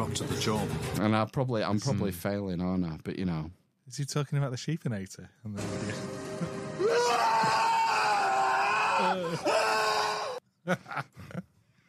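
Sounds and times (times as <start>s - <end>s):
speech: 0.0s - 7.6s, 9.0s - 9.8s, 10.6s - 11.4s
loud drawn-out person screaming with wavering pitch: 6.8s - 10.4s.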